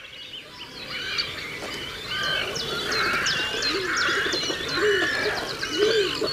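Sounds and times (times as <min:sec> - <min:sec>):
bird colony chirping and whistling: 0:00.0 - 0:06.3
great cormorants Phalacrocorax carbo croaking on the brackish Tagus river: 0:02.2 - 0:06.3.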